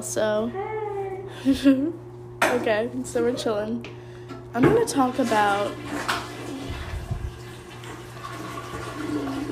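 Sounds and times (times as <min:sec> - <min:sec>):
speech: 0:00.0 - 0:06.2
toilet flushing: 0:04.6 - 0:09.4.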